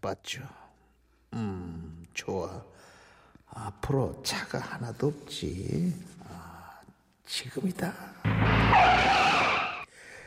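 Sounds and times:
speech: 0.0s - 0.6s, 1.3s - 2.9s, 3.5s - 6.4s, 7.3s - 9.6s
car tires screeching as driver brakes hard: 8.3s - 9.9s.

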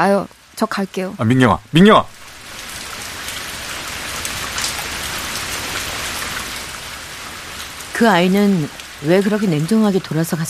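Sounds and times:
speech: 0.0s - 2.2s, 8.0s - 10.4s
steady autumn rain falling: 0.0s - 10.4s.

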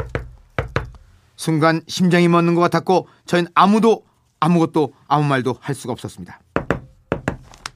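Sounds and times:
duty officer knocking on a wooden bathroom door in army barracks: 0.0s - 0.9s, 6.6s - 7.4s
speech: 1.4s - 6.4s.

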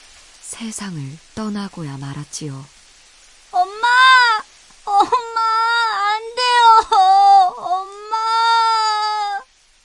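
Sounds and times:
speech: 0.5s - 2.8s
person wailing and sobbing loudly: 3.6s - 9.5s.

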